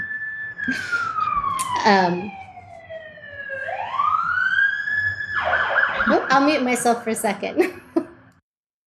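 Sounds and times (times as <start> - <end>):
emergency vehicle siren wailing outside: 0.0 - 6.8
speech: 0.7 - 1.1, 1.8 - 2.4, 6.1 - 7.8.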